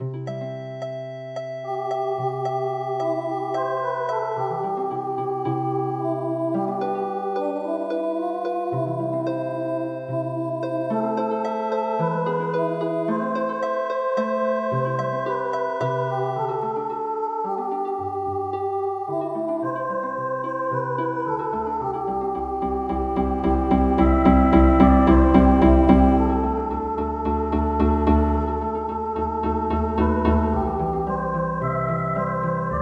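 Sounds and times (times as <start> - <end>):
MIDI harp playing a traditional hymn: 0.0 - 32.8.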